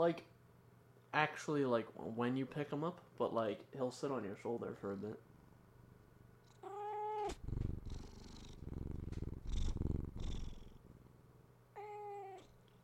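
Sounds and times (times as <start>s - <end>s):
speech: 0.0s - 0.3s, 1.1s - 5.3s
male cat purring with a rumbling pulse: 6.4s - 11.2s, 11.8s - 12.6s
male cat meowing drawn-out: 6.6s - 7.4s, 11.8s - 12.5s.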